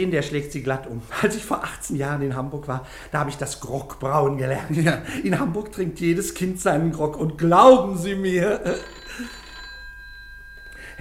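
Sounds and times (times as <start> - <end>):
faint hiss: 0.0 - 9.3
speech: 0.0 - 9.4
old-fashioned telephone bell ringing: 8.4 - 10.9.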